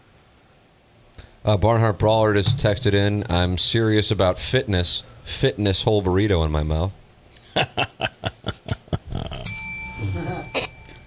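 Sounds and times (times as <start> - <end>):
speech: 1.4 - 7.0, 7.6 - 8.1
laughter: 7.5 - 10.7
bright bell struck and ringing: 9.5 - 11.0.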